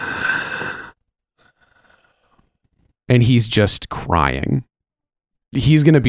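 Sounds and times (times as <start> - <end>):
deep heavy breath with a loud rough exhale: 0.0 - 2.9
speech: 3.1 - 4.7, 5.5 - 6.0.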